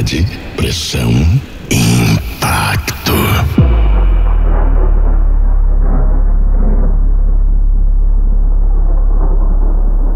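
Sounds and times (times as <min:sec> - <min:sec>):
speech: 0:00.0 - 0:02.9
dense low-mid churn: 0:00.0 - 0:10.1
deep storm-like sub-bass rumble below 50 Hz: 0:03.2 - 0:10.1.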